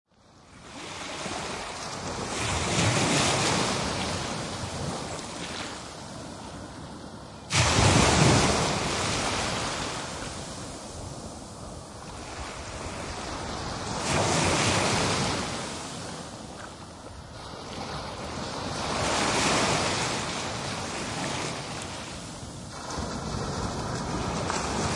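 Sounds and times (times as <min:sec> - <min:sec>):
Atlantic Ocean surf waves crashing on a beach: 0:00.4 - 0:24.9.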